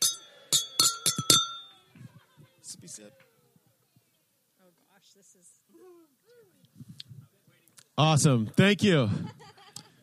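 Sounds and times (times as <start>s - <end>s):
glasses clinking in a toast: 0.0s - 1.7s
laughter: 1.9s - 2.8s, 9.0s - 10.0s
speech: 2.8s - 3.3s, 5.0s - 9.6s.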